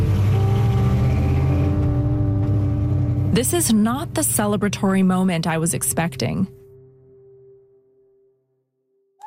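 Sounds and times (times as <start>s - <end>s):
car engine revving and driving off: 0.0s - 6.3s
speech: 3.4s - 6.6s.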